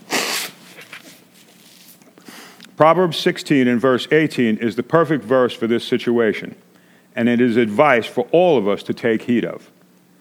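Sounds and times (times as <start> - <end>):
person blowing nose: 0.0 - 2.6
speech: 2.8 - 9.7.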